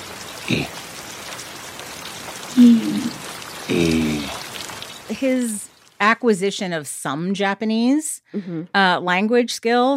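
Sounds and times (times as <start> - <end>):
rain falling on a surface: 0.0 - 6.1
brief voice-like sounds: 0.5 - 0.7, 2.6 - 4.4
speech: 0.5 - 0.8, 5.2 - 9.9.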